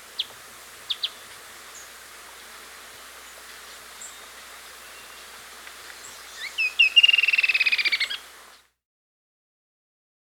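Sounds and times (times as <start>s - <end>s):
Creamy-bellied antwren song in South America: 0.9s - 1.9s, 6.0s - 8.2s.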